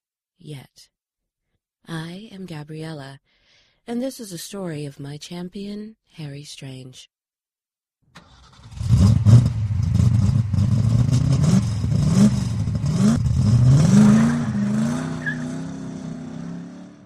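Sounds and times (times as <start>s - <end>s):
speech: 0.4s - 1.0s, 1.8s - 7.1s
old F coupe engine roaring driven fast on dirt and gravel: 8.2s - 17.0s.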